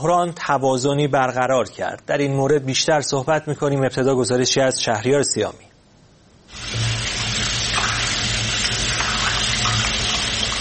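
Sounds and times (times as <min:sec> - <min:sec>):
speech: 0:00.0 - 0:05.7
water running from an open tap during handwashing: 0:06.5 - 0:10.5.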